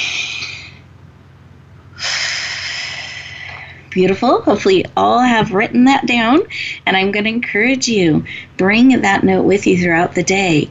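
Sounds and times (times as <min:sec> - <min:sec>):
deep breathing: 0:00.0 - 0:00.8, 0:01.9 - 0:03.9
speech: 0:03.9 - 0:10.6.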